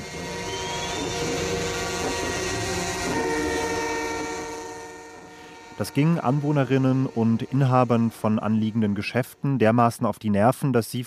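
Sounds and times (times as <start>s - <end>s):
truck horns honking: 0.0s - 9.7s
speech: 5.8s - 11.0s.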